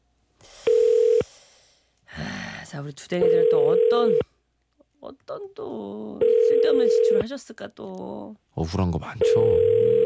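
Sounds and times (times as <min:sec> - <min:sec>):
telephone ringback tone of an outgoing call: 0:00.7 - 0:01.2, 0:03.2 - 0:04.2, 0:06.2 - 0:07.2, 0:09.2 - 0:10.0
speech: 0:02.7 - 0:04.3, 0:05.0 - 0:10.0.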